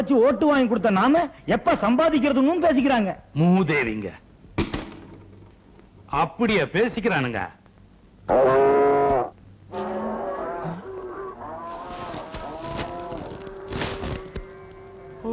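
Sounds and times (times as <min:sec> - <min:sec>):
speech: 0:00.0 - 0:04.2, 0:06.1 - 0:07.6, 0:08.3 - 0:08.8
cows mooing: 0:08.4 - 0:15.3.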